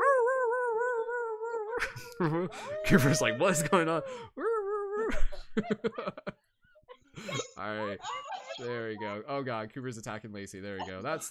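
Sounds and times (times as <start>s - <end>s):
dog howling: 0.0s - 1.9s, 2.6s - 5.1s
laughter: 1.8s - 4.1s, 5.6s - 6.4s, 10.9s - 11.3s
speech: 1.8s - 6.5s, 7.2s - 11.3s.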